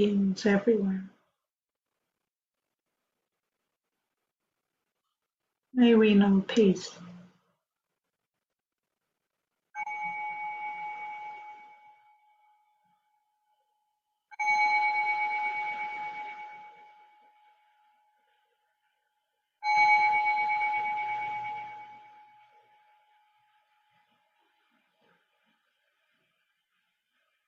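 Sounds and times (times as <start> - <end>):
speech: 0.0 - 1.1, 5.8 - 7.0
meditation bell ringing: 9.8 - 13.5, 14.4 - 18.3, 19.6 - 23.6.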